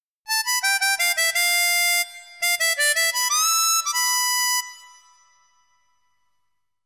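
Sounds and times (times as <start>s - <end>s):
harmonica: 0.3s - 5.8s.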